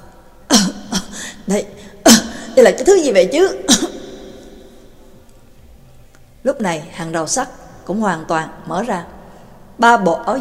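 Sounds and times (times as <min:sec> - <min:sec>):
man coughing and choking on thick dust: 0:00.5 - 0:01.2, 0:03.7 - 0:04.1
speech: 0:01.5 - 0:03.9, 0:06.4 - 0:09.2, 0:09.8 - 0:10.3.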